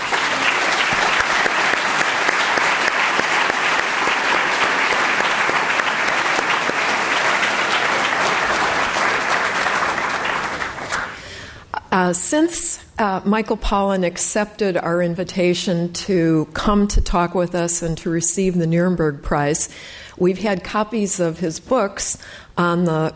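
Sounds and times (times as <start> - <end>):
large audience applause: 0.0 - 11.3
speech: 12.3 - 23.1.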